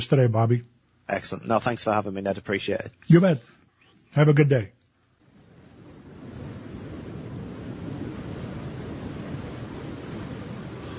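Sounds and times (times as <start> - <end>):
speech: 0.0 - 4.8
ocean surf rolling and washing: 5.2 - 10.9.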